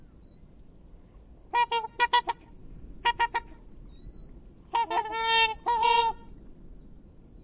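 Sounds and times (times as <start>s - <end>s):
black swan Cygnus atratus honking calls: 1.5s - 2.4s, 3.0s - 3.6s, 4.7s - 6.3s.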